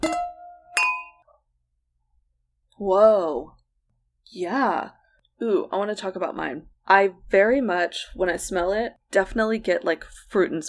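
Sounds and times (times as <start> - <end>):
wine glasses clinking in a toast: 0.0 - 1.3
speech: 2.8 - 3.6, 4.3 - 10.6.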